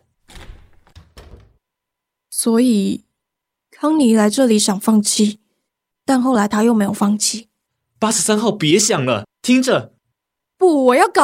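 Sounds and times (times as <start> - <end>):
door being opened: 0.0 - 1.6
speech: 2.4 - 3.0, 3.8 - 5.4, 6.1 - 10.0, 10.6 - 11.2.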